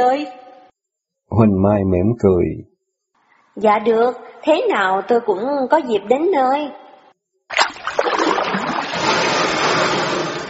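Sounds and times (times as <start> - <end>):
speech: 0.0 - 0.4, 1.3 - 2.7, 3.6 - 6.8
paddle splashing water while rowing a small boat: 7.5 - 10.4.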